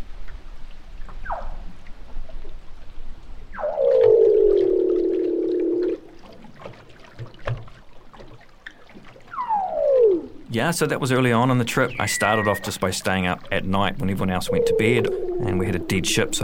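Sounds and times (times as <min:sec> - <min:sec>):
crackly patter-like underwater noise: 0:00.0 - 0:16.4
seal calls underwater recorded with a hydrophone: 0:03.5 - 0:06.2, 0:09.2 - 0:10.5, 0:11.6 - 0:13.2, 0:13.9 - 0:16.4
speech: 0:10.6 - 0:16.4.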